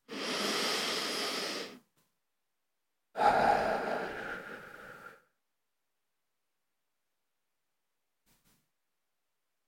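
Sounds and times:
deep breathing during a guided meditation: 0:00.0 - 0:01.8, 0:03.2 - 0:05.3.

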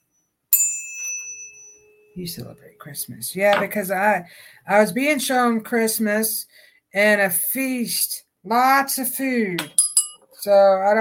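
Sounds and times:
bell struck with a bright high-pitched ding: 0:00.0 - 0:02.4
speech: 0:02.2 - 0:09.8, 0:10.4 - 0:10.9.

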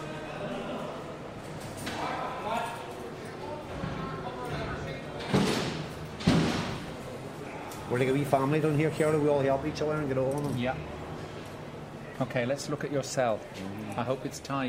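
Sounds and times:
prison wing hubbub of overlapping voices: 0:00.0 - 0:14.6
heavy steel prison doors slamming: 0:05.2 - 0:07.1
speech: 0:07.9 - 0:11.0, 0:12.2 - 0:14.6.

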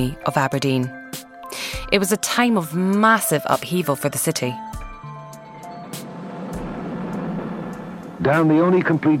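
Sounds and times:
speech: 0:00.0 - 0:04.7, 0:08.2 - 0:09.1
vehicles passing with brief hisses: 0:05.2 - 0:09.1
heavy road traffic with droning engines: 0:05.4 - 0:09.1.

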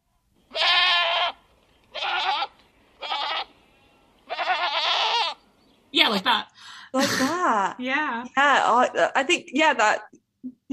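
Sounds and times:
goat bleating: 0:00.5 - 0:03.5, 0:04.2 - 0:05.4
speech: 0:06.1 - 0:10.7.

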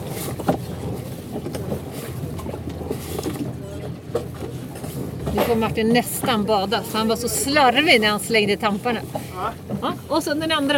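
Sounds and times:
motorboat engine rumbling while pulling away from a dock: 0:00.0 - 0:10.7
speech: 0:05.5 - 0:10.7.

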